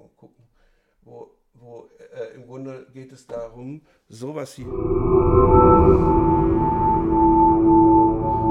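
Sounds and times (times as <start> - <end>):
speech: 2.4 - 6.8
breathy wavetable synthesizer drone noise: 4.6 - 8.5.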